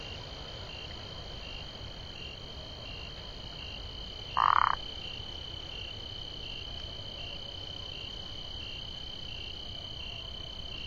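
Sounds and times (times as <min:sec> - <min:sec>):
quiet background hiss: 0:00.0 - 0:10.8
Burmeister's leaf frog Phyllomedusa burmeisteri pulsed croak: 0:04.3 - 0:04.9.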